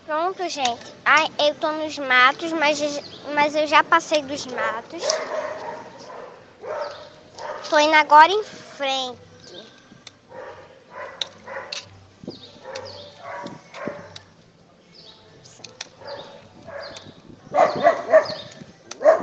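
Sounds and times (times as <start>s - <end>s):
speech: 0.1s - 5.5s, 7.7s - 9.2s
dog barking in front of a gate: 5.0s - 7.7s, 10.3s - 11.8s, 12.6s - 14.2s, 15.8s - 19.2s.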